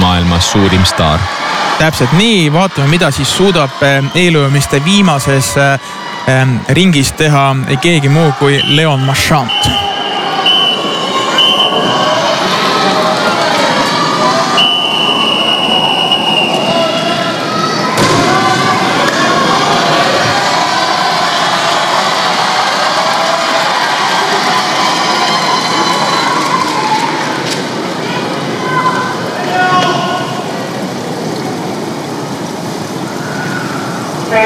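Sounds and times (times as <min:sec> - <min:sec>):
spectators cheering at a swimming race: 0:00.0 - 0:34.3
speech: 0:00.4 - 0:09.8
shrill whistles at a swimming race: 0:08.4 - 0:12.1, 0:14.5 - 0:17.2.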